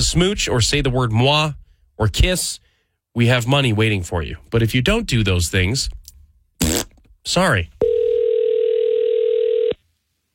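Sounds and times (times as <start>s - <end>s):
speech: 0.0s - 2.6s, 3.2s - 6.0s, 6.6s - 7.9s
telephone line tone before call forwarded to voicemail: 7.8s - 9.8s.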